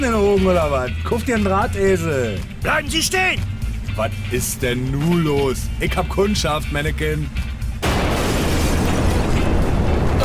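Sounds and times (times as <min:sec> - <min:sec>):
speech: 0:00.0 - 0:07.6
loud explosion: 0:07.8 - 0:10.2.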